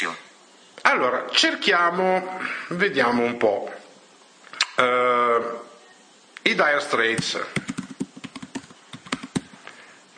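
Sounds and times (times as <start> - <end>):
speech: 0.0 - 3.8, 4.8 - 5.7, 6.4 - 7.7
typing on a keyboard into a music search text field: 7.2 - 9.5.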